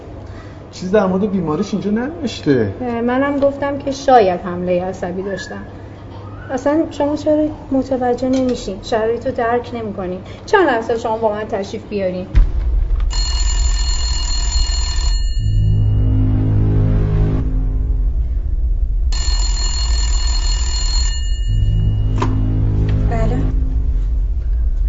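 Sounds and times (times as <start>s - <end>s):
speech: 0.8s - 5.8s, 6.5s - 12.5s
steady low hum: 12.3s - 24.8s
home telephone ringing electronically: 13.1s - 15.9s, 19.2s - 22.2s.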